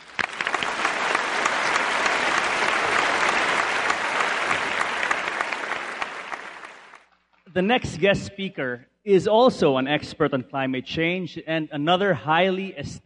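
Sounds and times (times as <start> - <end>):
audience applause at a climate change event: 0.0 - 7.1
speech: 7.6 - 13.0.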